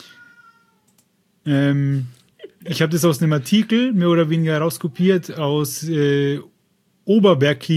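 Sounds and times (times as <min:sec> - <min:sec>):
cat meowing: 0:00.0 - 0:00.9
soft clicks: 0:00.8 - 0:01.1
speech: 0:01.5 - 0:06.5, 0:07.1 - 0:07.7.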